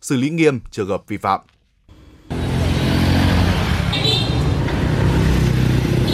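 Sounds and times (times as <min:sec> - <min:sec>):
speech: 0:00.0 - 0:01.6
dense street traffic at a high school gate: 0:01.9 - 0:06.1
students' motorbike engines humming and droning at a high school gate: 0:01.9 - 0:06.1.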